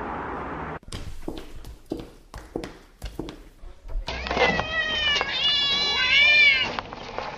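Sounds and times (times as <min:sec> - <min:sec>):
soft footsteps padding along: 0:00.8 - 0:04.1
grey, white and black kittens mewing: 0:04.1 - 0:06.8.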